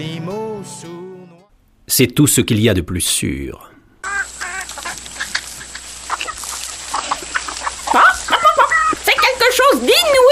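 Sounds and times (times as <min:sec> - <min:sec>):
speech: 0:01.9 - 0:03.8
hens clucking in a henhouse: 0:04.0 - 0:10.2.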